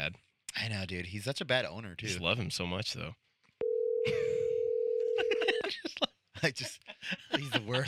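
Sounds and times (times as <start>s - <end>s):
speech: 0.0s - 3.2s, 6.4s - 7.8s
telephone dial tone after call disconnects: 3.6s - 5.2s
laughter: 4.1s - 4.5s, 5.1s - 7.8s.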